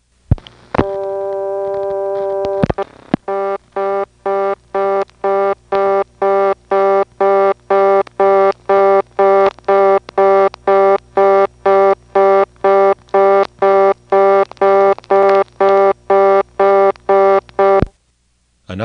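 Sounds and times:
coin telephone line humming with a steady tone: 0.7s - 18.0s
loud pulsing coin telephone signal beeping: 3.3s - 17.9s.

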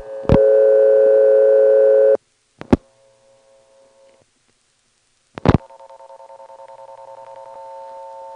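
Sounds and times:
buzzy phone-line hum pulsing in a ticking rhythm: 0.0s - 2.2s, 5.4s - 8.3s
steady telephone tone: 0.0s - 2.2s, 5.6s - 8.3s.

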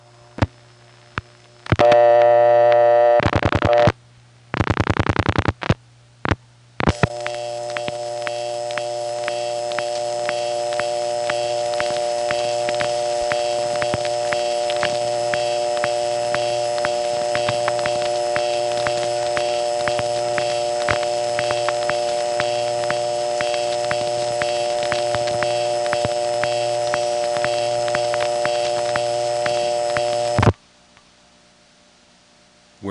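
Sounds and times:
electronic telephone-line hum with layered harmonic tones: 0.0s - 30.6s
loud bursts of telephone tone: 1.7s - 4.0s, 6.8s - 30.5s
faint clicks on the telephone line: 4.6s - 31.1s.

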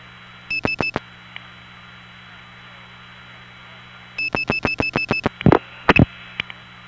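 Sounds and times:
telephone line hum: 0.0s - 1.0s, 4.2s - 6.1s.

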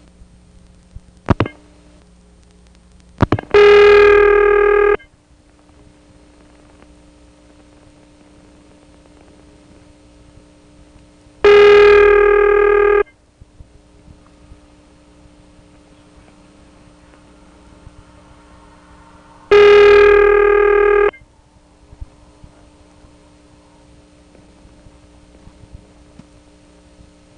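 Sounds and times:
constant low hum: 0.0s - 27.3s
sharp clicks on a telephone trunk line: 0.8s - 1.6s
dialing tones on a telephone trunk line: 3.5s - 5.0s, 11.5s - 13.1s, 19.5s - 21.1s.

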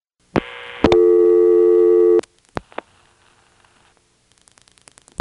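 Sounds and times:
telephone reorder tone on a vacant number level: 0.4s - 2.2s.

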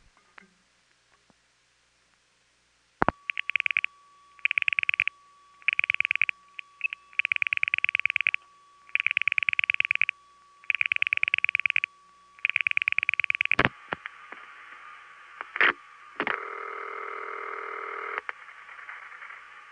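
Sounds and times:
evenly spaced rhythmic bursts on a telephone line: 3.1s - 13.7s
steady tone on a band-limited telephone line: 3.1s - 13.7s, 16.2s - 18.3s
telephone signaling tones: 3.1s - 13.7s.

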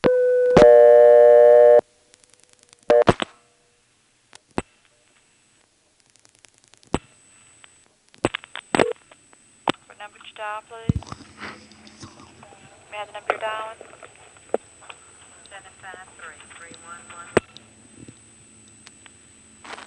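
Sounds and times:
steady buzzing telephone tone: 0.0s - 1.9s, 2.9s - 3.2s.

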